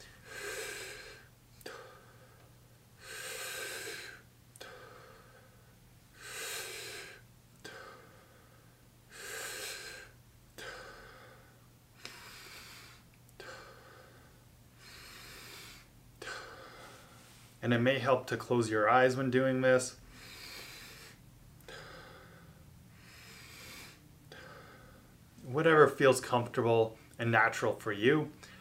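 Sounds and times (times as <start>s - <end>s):
deep slow breathing with full inhales and exhales: 0.0s - 17.6s, 20.0s - 25.2s
faint low hum: 0.0s - 28.5s
speech: 17.6s - 20.0s, 26.0s - 28.5s.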